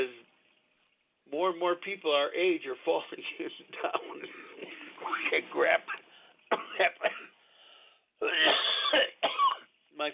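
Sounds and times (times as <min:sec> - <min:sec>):
speech: 0:01.3 - 0:07.3, 0:08.2 - 0:09.1, 0:10.0 - 0:10.1
person in harsh coughing fit: 0:03.8 - 0:07.4, 0:08.2 - 0:09.7
thin wheezy breath: 0:07.3 - 0:08.2.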